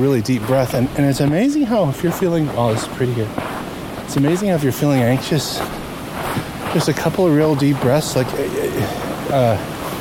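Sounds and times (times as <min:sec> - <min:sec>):
speech: 0:00.0 - 0:09.7
small waterfall rushing and splashing: 0:00.0 - 0:09.9.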